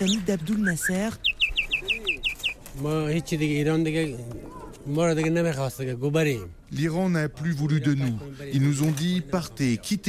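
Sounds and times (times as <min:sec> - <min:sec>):
speech: 0:00.0 - 0:01.3, 0:02.8 - 0:10.0
small caged parakeet chirping: 0:00.0 - 0:02.6.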